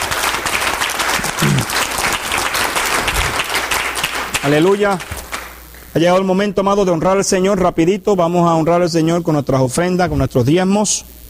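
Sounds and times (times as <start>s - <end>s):
audience applauding: 0.0s - 5.6s
speech: 4.4s - 5.2s, 6.0s - 11.2s.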